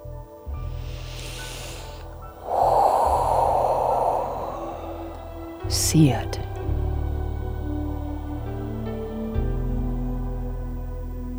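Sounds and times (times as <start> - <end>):
low steady musical drone: 0.5 - 10.7
deep breath in during a guided relaxation: 0.6 - 5.8
speech: 5.7 - 6.4.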